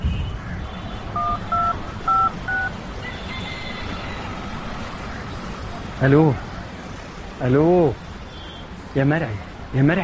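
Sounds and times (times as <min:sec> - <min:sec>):
telephone touch-tone beeps as a number is dialed: 0:01.2 - 0:02.7
speech: 0:06.0 - 0:06.5, 0:07.4 - 0:08.0, 0:09.0 - 0:10.0.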